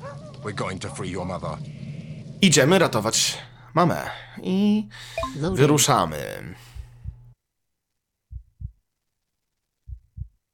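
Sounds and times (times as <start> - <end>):
speech: 0.4 - 1.8, 2.4 - 6.7
low video game heartbeat: 6.6 - 7.4, 8.3 - 8.8, 9.8 - 10.4.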